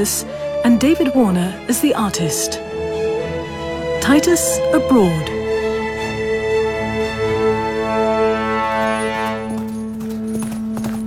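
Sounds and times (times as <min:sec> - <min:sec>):
speech: 0:00.0 - 0:02.6, 0:04.0 - 0:05.4
droning musical backdrop with sustained tones: 0:00.0 - 0:11.0
horse hooves clip-clopping in a gallop: 0:08.6 - 0:11.0.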